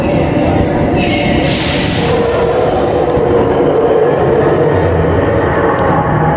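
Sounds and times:
train wheels squealing as train slows to a stop: 0:00.0 - 0:02.8
train rumble: 0:00.0 - 0:06.3.

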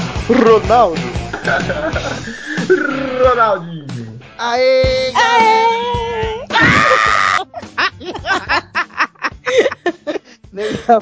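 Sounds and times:
speech: 0:00.3 - 0:06.0, 0:10.6 - 0:11.0
laughter: 0:01.3 - 0:02.8, 0:06.5 - 0:11.0
high wavering cry: 0:02.2 - 0:04.2, 0:05.1 - 0:07.5
loud harsh scream: 0:06.5 - 0:07.4.

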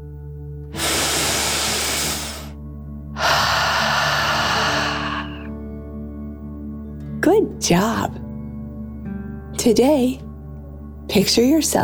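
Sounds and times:
long forceful exhale out through the mouth: 0:00.7 - 0:02.6, 0:03.2 - 0:05.5
slow deep relaxing breath drawn in through the nose: 0:00.7 - 0:02.6, 0:03.2 - 0:05.6
speech: 0:07.3 - 0:08.2, 0:09.6 - 0:10.2, 0:11.1 - 0:11.8.

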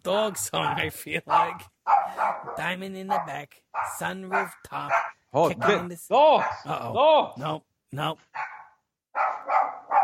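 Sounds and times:
speech: 0:00.0 - 0:08.5
small dogs barking: 0:00.6 - 0:06.7, 0:08.3 - 0:10.0.

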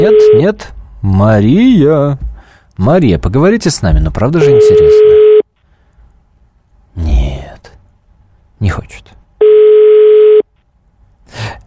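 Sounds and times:
speech: 0:00.0 - 0:05.2
steady electronic phone tone: 0:04.4 - 0:05.4, 0:09.4 - 0:10.5.

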